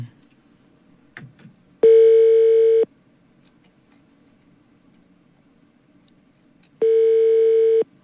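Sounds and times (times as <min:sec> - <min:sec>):
electronic ring tones of a phone line ringing out: 0:01.9 - 0:02.9, 0:06.8 - 0:07.9.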